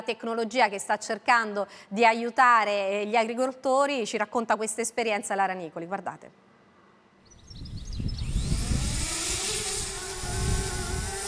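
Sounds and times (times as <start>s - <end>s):
speech: 0.0s - 6.5s
agricultural drone propellers whirring: 7.4s - 11.2s.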